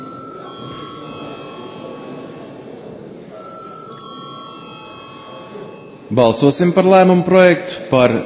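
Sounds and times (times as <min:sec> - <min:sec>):
electric bell ringing in parliament chamber before a vote: 0:00.0 - 0:02.6, 0:03.3 - 0:06.8
speech: 0:06.1 - 0:08.2.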